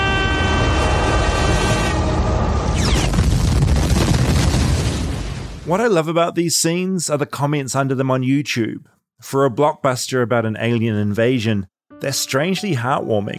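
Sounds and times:
film explosion of fighter plane flying into alien ship: 0:00.1 - 0:05.8
speech: 0:05.7 - 0:13.3.

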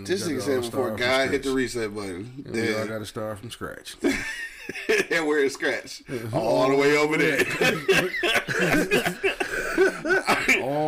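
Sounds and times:
speech: 0:00.0 - 0:10.8
breathy chuckling: 0:07.6 - 0:10.8
person coughing in short rough bursts: 0:08.5 - 0:10.8.

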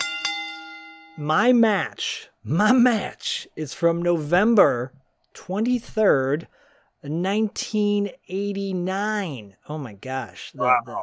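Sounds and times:
boxing ring bell ringing: 0:00.0 - 0:01.2
speech: 0:01.2 - 0:11.0.

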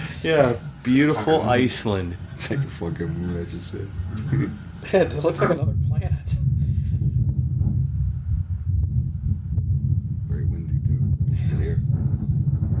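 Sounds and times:
speech: 0:00.2 - 0:06.4
laughter: 0:04.1 - 0:05.6
loud wind buffeting a microphone: 0:05.4 - 0:12.7.

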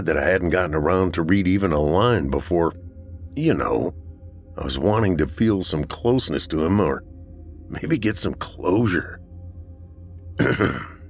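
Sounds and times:
speech: 0:00.0 - 0:02.8, 0:03.4 - 0:04.0, 0:04.6 - 0:07.1, 0:07.7 - 0:09.2, 0:10.4 - 0:10.9
quiet low hum: 0:00.0 - 0:11.0
throat clearing with a slight cough: 0:10.4 - 0:11.0.

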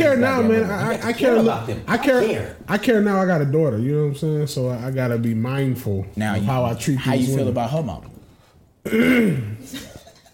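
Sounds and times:
speech: 0:00.0 - 0:08.1, 0:08.8 - 0:09.9
loud voiced gravelly throat clearing: 0:08.8 - 0:09.8.

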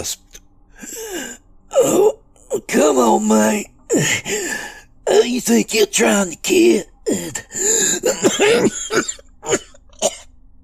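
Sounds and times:
speech: 0:00.0 - 0:10.2
man coughing up blood with weak wet coughs: 0:07.1 - 0:10.2
throat clearing: 0:07.9 - 0:10.2.

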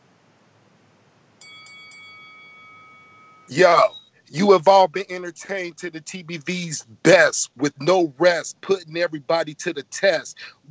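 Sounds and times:
boxing ring bell ringing: 0:01.4 - 0:04.1
speech: 0:03.5 - 0:10.6.

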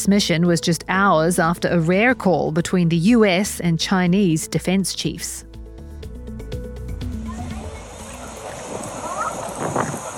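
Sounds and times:
speech: 0:00.0 - 0:05.5
rushing wind noise over the mic: 0:07.0 - 0:10.1
rubber boat splashing across a flooded street in Dubai: 0:07.1 - 0:10.1
indistinct voices murmuring faintly: 0:07.2 - 0:10.1.

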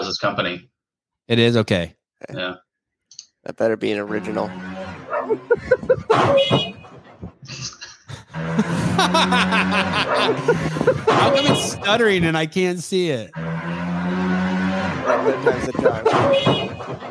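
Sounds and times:
speech: 0:00.1 - 0:00.7, 0:01.3 - 0:02.6, 0:03.4 - 0:14.2, 0:15.1 - 0:17.0
dog barking and yipping at a motorcycle: 0:05.1 - 0:05.5, 0:10.0 - 0:11.6, 0:15.0 - 0:15.4
laughter: 0:05.2 - 0:06.3, 0:07.5 - 0:12.2, 0:15.1 - 0:16.3.

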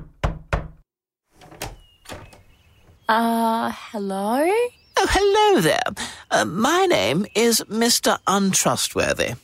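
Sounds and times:
man knocking on a door: 0:00.0 - 0:00.8
speech: 0:03.1 - 0:09.4.

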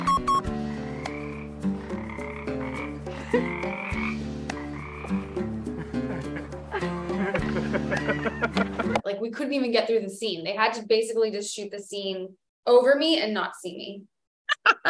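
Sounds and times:
chorus of many frogs croaking: 0:00.7 - 0:05.6
speech: 0:03.3 - 0:03.6, 0:09.2 - 0:14.8
laughter: 0:05.7 - 0:09.0, 0:14.5 - 0:14.8.

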